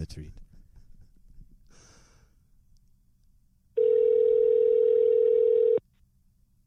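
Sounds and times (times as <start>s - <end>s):
soft breathy sniff: 1.7s - 2.4s
telephone tone while calling a home phone number: 3.8s - 5.8s.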